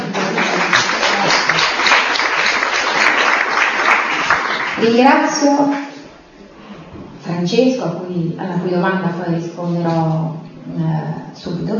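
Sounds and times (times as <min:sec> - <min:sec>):
audience applause: 0:00.0 - 0:05.4
speech: 0:04.8 - 0:05.8, 0:07.4 - 0:11.7.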